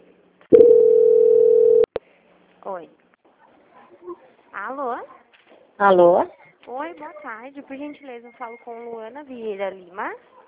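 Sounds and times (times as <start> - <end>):
telephone line tone while a call is transferred: 0.5 - 1.9
speech: 2.6 - 3.0, 4.0 - 5.2, 5.8 - 10.4.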